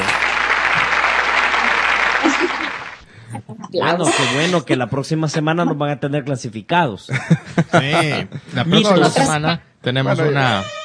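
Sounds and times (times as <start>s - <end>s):
audience applause for a group: 0.0s - 3.1s
laughter: 1.6s - 4.9s, 7.1s - 8.9s
speech: 3.8s - 10.8s.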